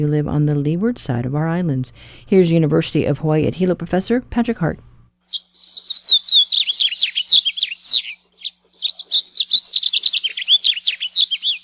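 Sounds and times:
speech: 0.0 - 5.5
house finch singing a long warbling song in the Hawaiian islands: 5.3 - 11.6.

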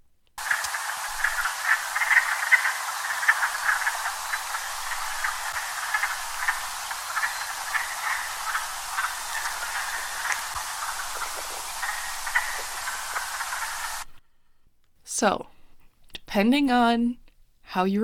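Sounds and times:
dense chorus of wood frogs with duck-like quacks: 0.4 - 14.1
speech: 15.2 - 15.5, 16.4 - 18.0.

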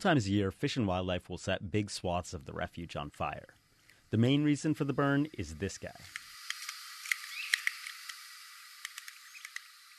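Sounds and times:
speech: 0.0 - 6.2
light outdoor hiss: 0.0 - 9.9
scattered ticks: 5.9 - 9.9
red-cockaded woodpecker squeaky call notes in a wildlife refuge: 6.1 - 9.9.

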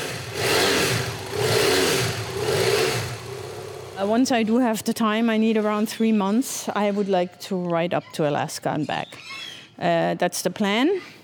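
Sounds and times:
BMW F800 motorcycle engine revving in a warehouse back room: 0.0 - 4.6
speech: 4.0 - 11.2.

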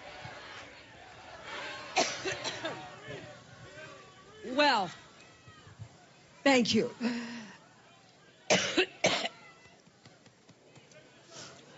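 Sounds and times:
harsh coughs: 2.0 - 2.8, 8.5 - 9.3
speech: 4.6 - 5.0, 6.4 - 7.4, 8.5 - 8.9.

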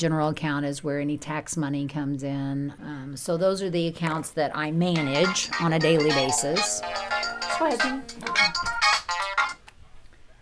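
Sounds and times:
speech: 0.0 - 8.8
cell phone ringtone playing electronic tune: 5.0 - 9.6.

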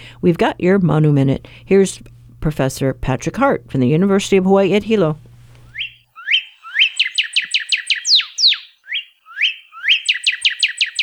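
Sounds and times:
speech: 0.2 - 5.3
northern cardinal singing: 5.7 - 11.0.

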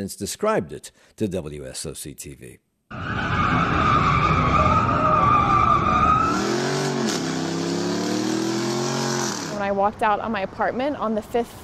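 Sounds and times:
speech: 0.0 - 4.2, 9.6 - 11.6
tires screeching with high whining pitch: 2.9 - 9.6
car engines revving: 3.0 - 9.7.

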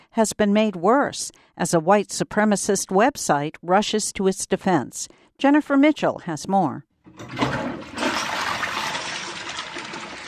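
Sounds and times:
speech: 0.2 - 7.6
toilet flushing with a pair of shoes in the bowl: 7.0 - 10.2.

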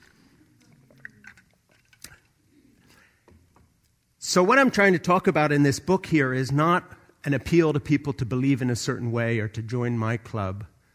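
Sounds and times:
swallowing: 0.0 - 3.2
person sipping water from a huge cup: 0.0 - 4.0
speech: 4.3 - 10.7.

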